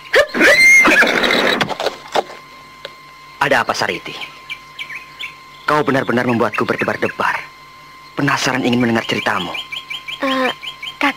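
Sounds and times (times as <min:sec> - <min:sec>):
horse neighing: 0:00.3 - 0:01.8
speech: 0:03.4 - 0:04.4, 0:05.7 - 0:07.4, 0:08.2 - 0:11.1.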